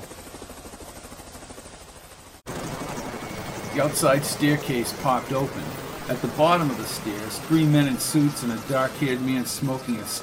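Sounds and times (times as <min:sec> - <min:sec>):
helicopter rotor thumping while landing on a pad: 0:00.0 - 0:10.2
rushing roar of helicopter engine and wind: 0:02.5 - 0:10.2
speech: 0:03.8 - 0:10.2.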